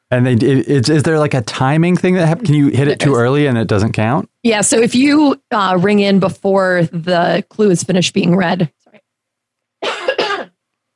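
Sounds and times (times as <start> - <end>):
speech: 0.1 - 8.8
woman coughing into her arm: 2.4 - 3.2, 9.8 - 10.6.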